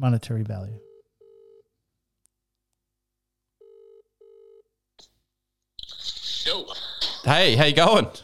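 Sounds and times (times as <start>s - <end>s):
speech: 0.0s - 0.9s, 6.5s - 8.2s
telephone ringback tone: 0.8s - 1.6s, 3.6s - 4.7s.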